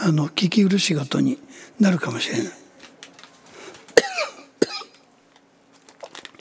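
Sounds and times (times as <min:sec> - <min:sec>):
speech: 0:00.0 - 0:02.6
person with a persistent cough coughing: 0:04.0 - 0:05.0.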